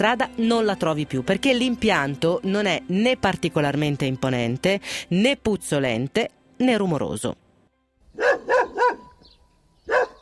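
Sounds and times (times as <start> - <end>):
speech: 0.0 - 7.4
dog barking outside a small wood-chip biomass plant: 8.1 - 9.2, 9.8 - 10.1.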